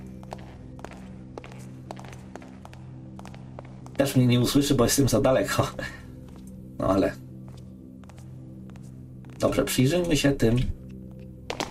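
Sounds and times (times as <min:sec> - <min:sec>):
footsteps on a marble floor in a stealth video game: 0:00.0 - 0:04.2, 0:06.2 - 0:06.6, 0:07.4 - 0:09.6
speech: 0:04.0 - 0:06.0, 0:06.8 - 0:07.2, 0:09.6 - 0:10.8.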